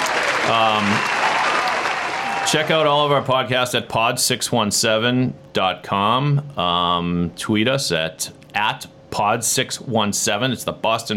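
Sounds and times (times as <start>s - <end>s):
crowd cheering and clapping: 0.0s - 3.2s
tonal whoop or horn-like blast: 0.3s - 2.7s
speech: 0.5s - 1.2s, 2.4s - 11.1s.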